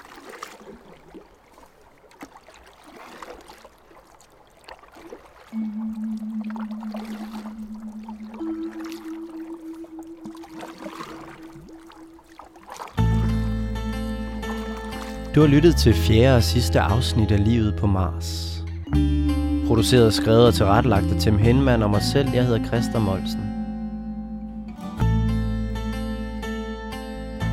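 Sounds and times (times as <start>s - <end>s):
canoes paddled on water: 0.0s - 15.9s
sustained low tone: 5.5s - 12.4s, 13.0s - 27.5s
loud musical chord: 5.6s - 12.2s, 13.0s - 27.5s
speech: 15.4s - 18.5s, 19.8s - 23.4s.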